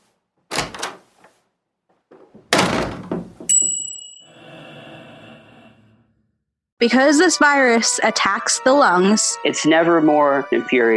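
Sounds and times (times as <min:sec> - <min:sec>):
door slamming hard with bangs and rattles: 0:00.5 - 0:01.1, 0:02.2 - 0:03.8
bright metallic ding: 0:03.5 - 0:04.3
speech: 0:06.8 - 0:10.9.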